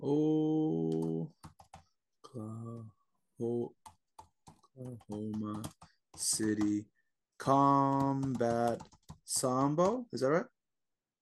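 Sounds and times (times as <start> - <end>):
speech: 0.0 - 0.3, 6.3 - 10.5
typing on a computer keyboard: 0.8 - 1.8, 3.9 - 6.8, 7.5 - 10.0.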